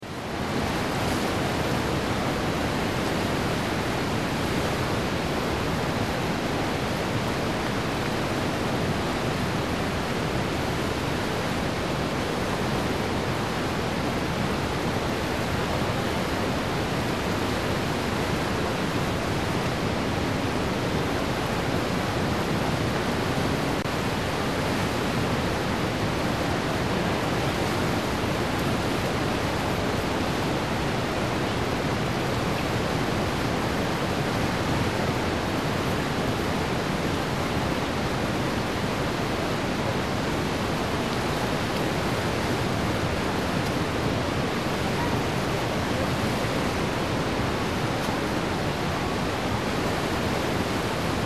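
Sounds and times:
waterfall: 0.0 - 51.2.

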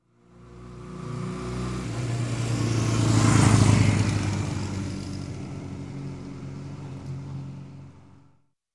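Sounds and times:
motorcycle passing by: 0.1 - 8.3.

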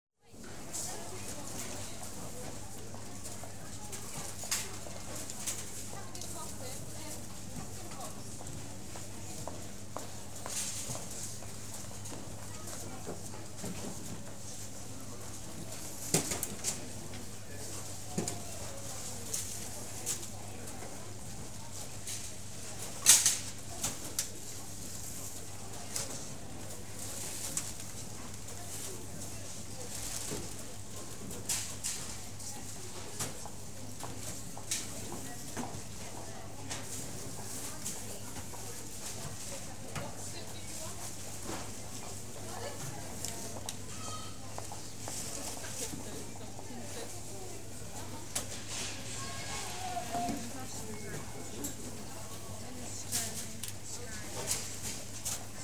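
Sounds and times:
supermarket ambience: 0.2 - 55.6.

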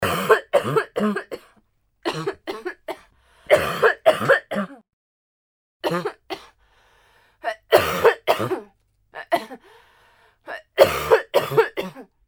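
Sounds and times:
woman coughing: 0.0 - 1.5, 2.1 - 4.8, 5.8 - 6.6, 7.5 - 9.6, 10.5 - 12.1.

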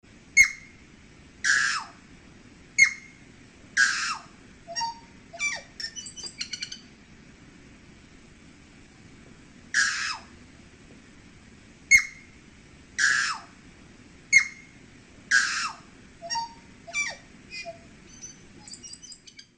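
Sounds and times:
New Zealand tui singing: 0.3 - 0.8, 1.4 - 2.0, 2.7 - 7.0, 11.9 - 12.4, 14.3 - 19.5.

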